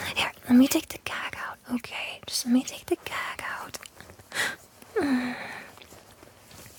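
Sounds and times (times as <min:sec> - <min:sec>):
speech: 0:00.5 - 0:03.8, 0:04.4 - 0:05.6
person sniffling with a quick wet sniff: 0:04.3 - 0:05.7.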